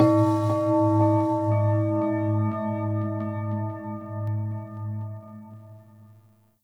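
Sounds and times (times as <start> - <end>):
ship ambience: 0.0 - 1.5
low temple bells: 0.0 - 5.4.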